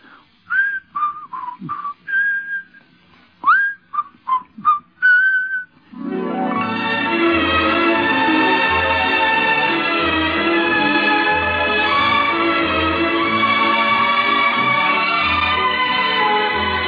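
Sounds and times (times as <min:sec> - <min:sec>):
person whistling a lilting melody: 0:00.5 - 0:02.8, 0:03.4 - 0:05.8
fuller sustained burst of music: 0:05.9 - 0:16.8.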